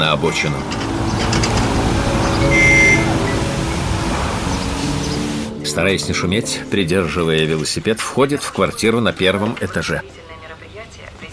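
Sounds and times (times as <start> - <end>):
speech: 0.0 - 1.6, 2.4 - 2.8, 5.7 - 10.2
car engine rumble: 0.0 - 5.6
road noise on a wet road: 0.0 - 9.1.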